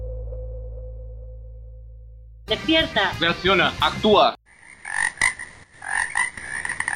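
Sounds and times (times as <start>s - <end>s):
speech: 2.5s - 4.4s
toads croaking in a dense chorus: 4.5s - 6.9s.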